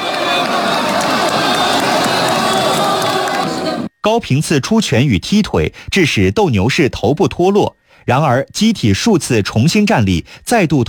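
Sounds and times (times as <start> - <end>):
large crowd at a humanoid robot fighting match cheering and shouting: 0.0 - 3.9
speech: 4.0 - 10.8.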